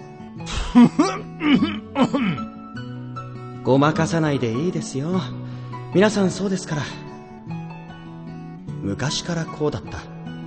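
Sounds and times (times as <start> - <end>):
person clearing throat with gruff rasps: 0.5 - 2.5
speech: 0.8 - 2.9, 3.6 - 7.1, 8.8 - 10.1.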